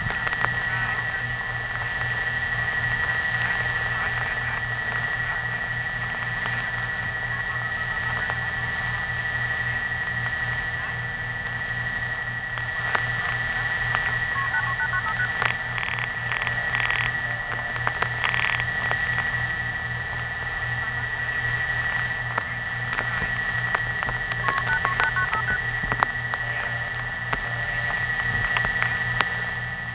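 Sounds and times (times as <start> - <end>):
pulsing low hum: 0.0 - 29.9
steady high whine: 0.0 - 29.9
telephone network multi-frequency signaling tones: 12.6 - 18.7, 23.8 - 28.6.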